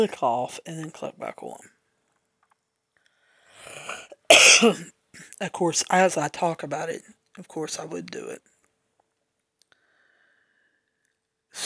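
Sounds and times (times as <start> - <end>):
speech: 0.0 - 1.7, 4.3 - 8.5
person inhaling: 3.2 - 4.2, 9.8 - 10.8
person coughing: 3.8 - 5.3.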